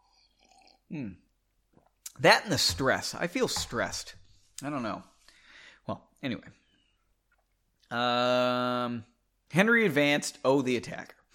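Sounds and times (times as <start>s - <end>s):
sip and swallow of bourbon from a glass: 0.0s - 0.9s
speech: 0.9s - 1.2s, 2.2s - 5.1s, 5.9s - 6.6s, 7.9s - 11.2s.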